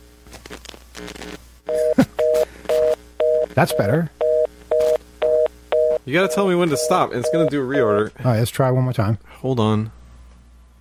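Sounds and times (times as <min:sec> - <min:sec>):
speech: 0:01.0 - 0:01.4, 0:03.6 - 0:04.2, 0:06.1 - 0:10.0
telephone touch-tone keypad beeps: 0:01.8 - 0:07.5.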